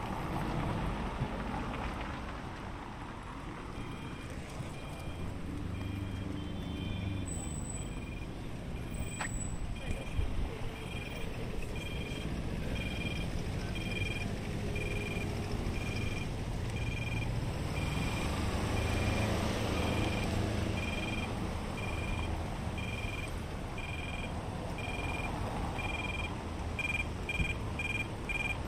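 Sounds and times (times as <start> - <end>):
low rumble of passing traffic at a paved intersection in Rome: 0.0 - 28.6
high Roman pedestrian crossing beeps: 3.7 - 28.6
faint voices: 9.6 - 15.3.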